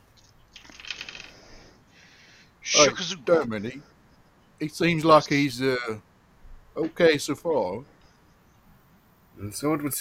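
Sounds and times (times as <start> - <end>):
dice rolling on a table: 0.6 - 1.5
speech: 2.8 - 3.9, 4.6 - 6.1, 6.8 - 7.9, 9.4 - 10.0.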